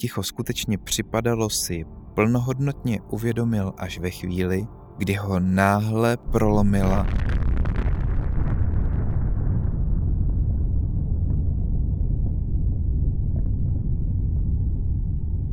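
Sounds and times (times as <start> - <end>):
speech: 0.0 - 7.4
huge explosion several kilometres away: 6.3 - 15.3.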